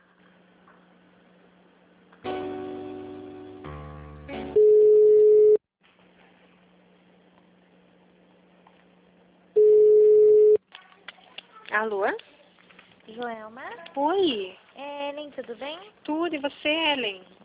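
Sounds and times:
telephone line beeps while a call is transferred: 4.6s - 5.6s, 9.6s - 10.6s
speech: 11.8s - 12.3s, 13.2s - 17.4s.

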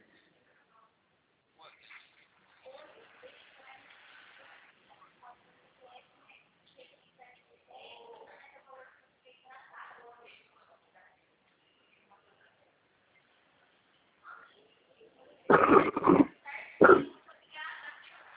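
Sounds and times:
faint murmuring voices: 0.0s - 18.3s
person coughing harshly: 15.5s - 17.1s.

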